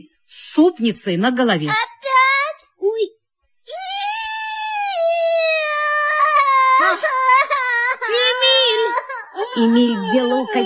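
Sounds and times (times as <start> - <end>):
speech: 0.3 - 1.9, 9.6 - 10.6
children crying in a kitchen: 3.7 - 10.6.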